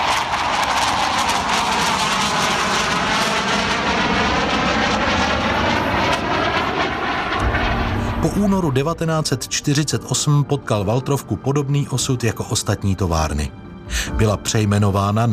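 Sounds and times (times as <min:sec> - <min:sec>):
Aero L-29 Delfín jet aircraft roaring: 0:00.0 - 0:11.7
speech: 0:08.2 - 0:15.3.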